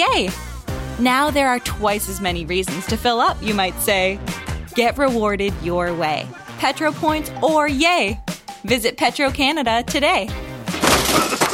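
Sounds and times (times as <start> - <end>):
speech: 0.0 - 10.4
wood splintering and breaking during a bathroom demolition: 10.7 - 11.5.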